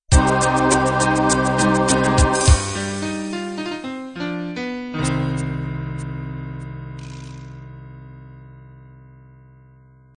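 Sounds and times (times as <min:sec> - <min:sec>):
natural music beat: 0:00.1 - 0:07.7.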